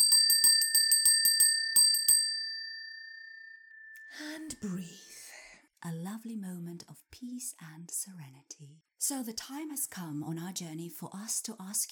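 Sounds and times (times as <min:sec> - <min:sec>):
bell ringing: 0:00.0 - 0:04.6
speech: 0:04.3 - 0:05.1, 0:05.8 - 0:11.9.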